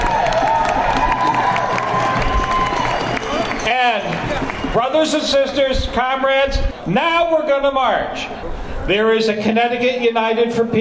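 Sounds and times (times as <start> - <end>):
whoops and shouts from protest crowd: 0.0 - 4.8
large crowd at a protest demonstration applauding: 0.0 - 5.7
speech: 4.8 - 10.8.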